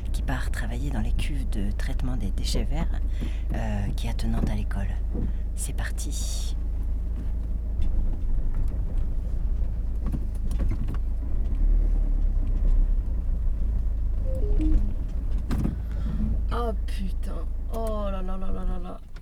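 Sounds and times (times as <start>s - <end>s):
car engine droning heard from inside the vehicle: 0.0s - 19.2s
speech: 0.3s - 6.6s, 16.9s - 19.2s
car engine descending whine as it stalls: 14.1s - 16.7s.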